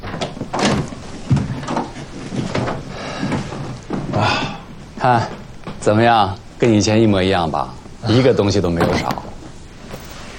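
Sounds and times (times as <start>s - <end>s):
door being opened with rattling handle and frame: 0.0s - 4.2s, 8.8s - 10.2s
speech: 5.0s - 9.2s.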